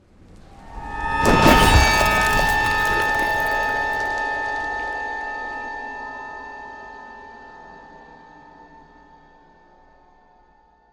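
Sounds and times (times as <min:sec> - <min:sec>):
ice spell frozen pierce cold whoosh: 0:00.5 - 0:04.6.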